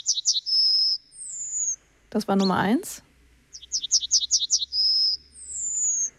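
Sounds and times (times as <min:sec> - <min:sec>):
yellowhammer song with chipping notes and whistle: 0:00.0 - 0:01.8, 0:03.5 - 0:06.1
speech: 0:02.1 - 0:03.1.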